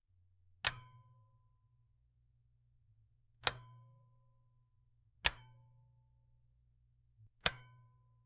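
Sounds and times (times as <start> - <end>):
long metal toggle switch: 0.6 - 0.8, 3.4 - 3.7, 5.2 - 5.5, 7.4 - 7.7.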